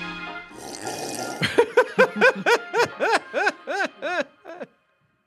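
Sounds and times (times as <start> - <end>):
loud wet slurp of a drink: 0.5 - 1.4
laughter: 1.4 - 4.7.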